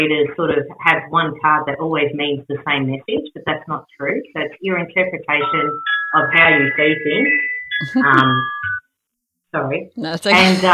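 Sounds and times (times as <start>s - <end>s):
speech: 0.0s - 8.8s, 9.5s - 10.7s
phone ringing with a steady electronic tone: 5.4s - 8.9s.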